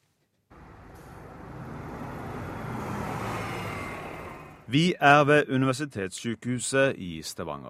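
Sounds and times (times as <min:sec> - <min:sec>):
bus road noise: 0:00.5 - 0:04.8
city bus driving in traffic: 0:00.5 - 0:04.8
traffic noise: 0:00.5 - 0:04.8
speech: 0:04.7 - 0:07.6.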